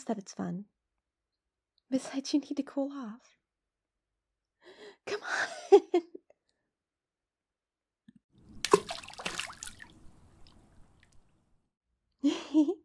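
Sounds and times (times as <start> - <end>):
speech: 0.0 - 0.8, 1.9 - 3.4, 4.6 - 6.1, 12.2 - 12.8
water splashing as someone splashes another person: 8.4 - 11.6.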